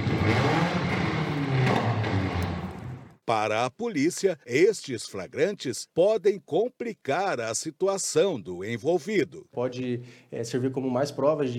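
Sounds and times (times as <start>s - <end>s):
car engine revving loudly: 0.0s - 3.2s
speech: 3.3s - 11.5s.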